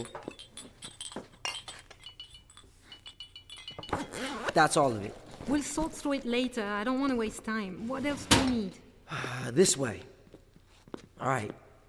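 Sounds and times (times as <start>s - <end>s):
speech: 0.0s - 0.2s, 4.5s - 10.1s, 11.2s - 11.6s
glass jars clinking while being packed: 0.0s - 4.6s.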